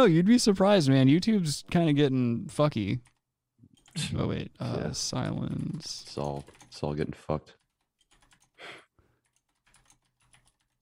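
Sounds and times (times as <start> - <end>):
speech: 0.0 - 3.1, 4.0 - 7.6
typing on a computer keyboard: 3.8 - 4.0, 5.2 - 7.0, 7.6 - 8.6, 9.2 - 10.8.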